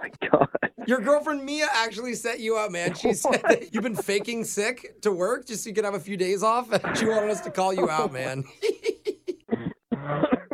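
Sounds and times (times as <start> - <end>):
speech: 0.0 - 8.8
laughter: 2.8 - 4.5, 6.8 - 9.5
man faking coughs, throaty rasping bursts: 6.8 - 8.4, 9.5 - 10.5.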